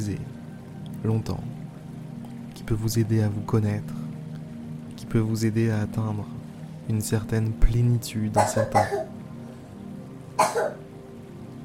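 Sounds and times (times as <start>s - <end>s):
speech: 0.0s - 0.4s, 1.0s - 1.6s, 2.6s - 4.0s, 5.1s - 9.2s, 10.4s - 10.8s
young boy coughing in the next room: 8.4s - 9.1s, 10.4s - 10.8s.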